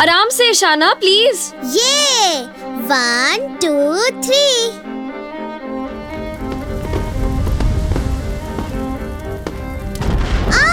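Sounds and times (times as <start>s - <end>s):
speech: 0.0s - 4.9s
bottle rocket bursting on the ground with crackling sizzle: 6.3s - 10.7s.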